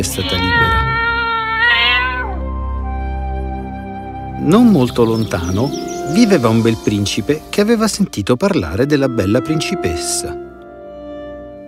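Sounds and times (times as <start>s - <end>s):
speech: 0.0s - 0.8s, 4.4s - 10.4s
cat meowing: 0.0s - 2.6s.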